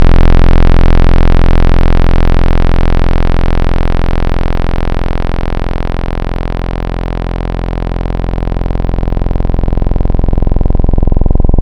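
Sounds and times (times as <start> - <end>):
Juno 60 analog synthesizer square wave: 0.0 - 11.6.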